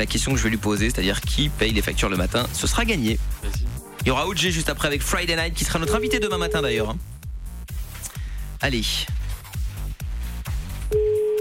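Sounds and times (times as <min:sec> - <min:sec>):
speech: 0:00.0 - 0:07.1, 0:08.6 - 0:09.2
thumping rhythmic music beat: 0:00.0 - 0:11.3
telephone ringback tone: 0:05.8 - 0:06.8, 0:10.9 - 0:11.3.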